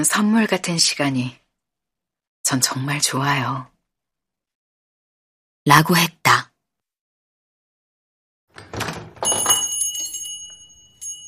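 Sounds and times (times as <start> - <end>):
speech: 0.0 - 1.4, 2.5 - 3.7, 5.6 - 6.5
small bell on a shop door jingling: 8.6 - 11.2.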